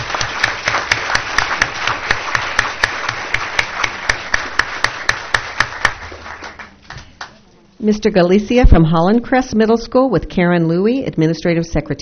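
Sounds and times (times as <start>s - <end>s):
room full of people applauding: 0.0s - 7.4s
sharper hand claps: 0.0s - 7.4s
speech: 7.8s - 11.9s.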